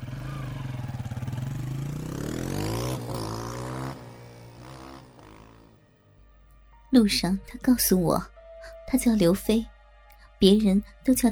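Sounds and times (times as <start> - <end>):
motorcycle engine revving then idling: 0.0 - 6.0
speech: 7.0 - 8.3, 8.9 - 9.7, 10.4 - 11.2.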